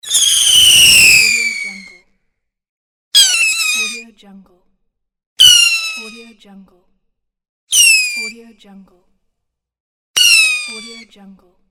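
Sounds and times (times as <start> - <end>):
firework whistling: 0.0 - 2.0, 3.2 - 4.0, 5.4 - 6.1, 7.7 - 8.3, 10.2 - 11.0.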